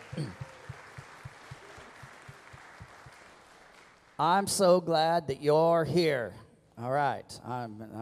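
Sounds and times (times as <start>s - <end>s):
church service audience applauding: 0.0s - 4.4s
speech: 0.2s - 0.4s, 4.2s - 8.0s.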